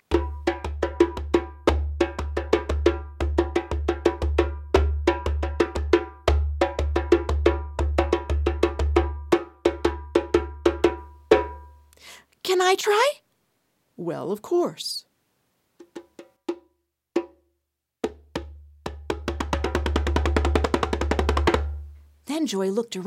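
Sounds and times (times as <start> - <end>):
djembe wooden African hand drum played in a brisk steady rhythm: 0.0 - 11.8, 15.8 - 17.4, 18.0 - 22.0
speech: 12.4 - 13.2, 14.0 - 15.0, 22.4 - 23.0.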